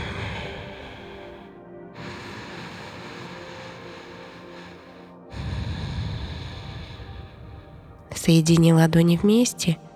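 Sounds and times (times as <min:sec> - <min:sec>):
slow deep breathing during a stretching exercise: 0:00.0 - 0:08.1
speech: 0:08.2 - 0:09.8.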